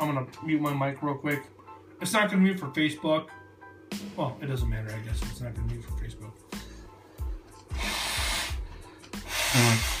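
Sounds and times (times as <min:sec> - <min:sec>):
speech: 0:00.0 - 0:06.4, 0:09.5 - 0:09.9
person with a sinus cold blowing nose: 0:07.7 - 0:09.9.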